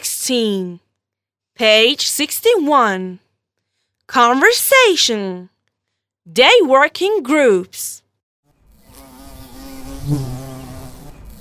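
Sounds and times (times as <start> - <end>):
speech: 0.3 - 0.8, 1.6 - 3.2, 4.1 - 5.5, 6.3 - 8.0, 10.1 - 10.3
honeybees buzzing at a hive in a tree: 8.6 - 11.4.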